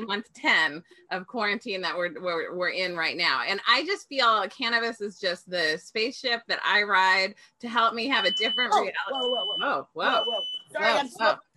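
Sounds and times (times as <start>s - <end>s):
speech: 0.0s - 11.5s
high-pitched smoke alarm tone: 8.1s - 11.0s.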